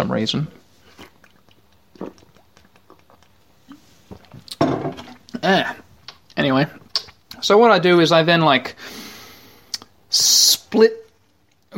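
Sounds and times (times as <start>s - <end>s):
speech: 0.0s - 0.6s, 6.4s - 6.8s, 7.4s - 9.0s, 10.1s - 11.0s
slurp and swallow of kombucha from a glass: 0.8s - 5.4s
lip and mouth clicks: 0.9s - 5.4s, 6.0s - 7.4s, 9.7s - 10.0s.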